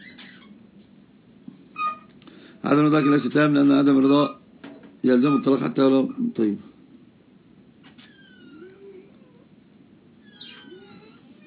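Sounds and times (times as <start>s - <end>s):
steady low hum: 0.0s - 11.4s
speech: 2.6s - 4.4s, 5.0s - 6.7s
cat meowing: 8.0s - 9.4s, 10.2s - 11.4s.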